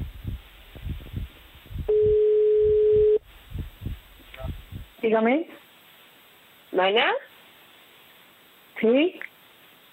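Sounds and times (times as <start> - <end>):
telephone line tone after dialing a number: 1.9 - 3.2
speech: 5.1 - 5.6, 6.8 - 7.3, 8.8 - 9.3.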